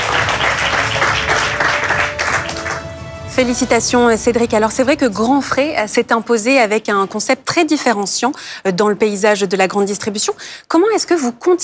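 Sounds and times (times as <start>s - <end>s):
audience applause from a sizable crowd: 0.0s - 4.0s
speech: 3.4s - 11.6s.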